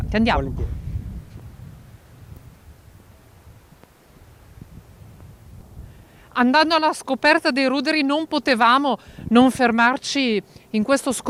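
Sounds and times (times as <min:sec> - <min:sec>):
strong outdoor wind buffeting the microphone: 0:00.0 - 0:07.4, 0:08.9 - 0:09.9
speech: 0:00.1 - 0:00.8, 0:06.4 - 0:11.2.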